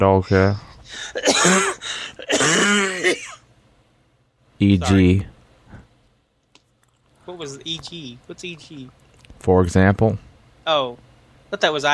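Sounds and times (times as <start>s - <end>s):
speech: 0.0s - 3.4s, 4.6s - 5.3s, 7.3s - 11.9s
hacking cough: 1.0s - 3.5s
harsh throat clearing: 1.2s - 3.4s.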